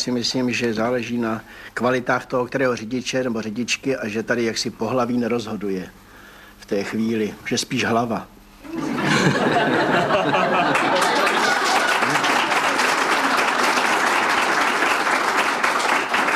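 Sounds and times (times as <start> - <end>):
speech: 0.0 - 6.0, 6.6 - 10.6
laughter: 8.7 - 12.5
crowd applause with women clapping: 8.7 - 16.3.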